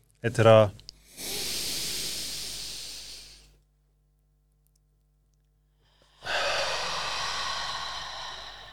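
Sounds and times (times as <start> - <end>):
speech: 0.2 - 0.8
forceful exhales in a deep breathing exercise: 1.1 - 3.6, 5.8 - 8.7.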